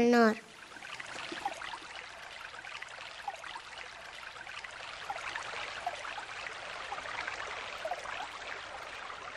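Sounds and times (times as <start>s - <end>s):
speech: 0.0s - 0.5s
shallow Siurana river trickling over stones: 0.5s - 9.3s.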